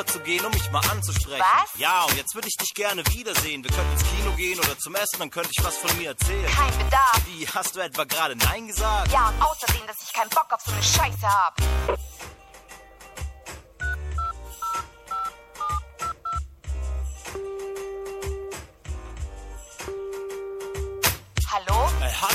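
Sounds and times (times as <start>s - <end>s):
speech: 0.0s - 12.2s
music-like background: 0.0s - 22.3s
touch-tone beeps of a phone number being dialed: 13.8s - 16.4s.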